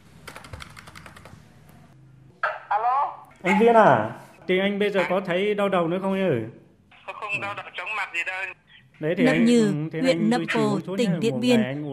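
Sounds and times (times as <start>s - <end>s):
typing on a computer keyboard to open clinic software: 0.2s - 1.4s
speech: 3.4s - 6.6s, 7.3s - 11.9s.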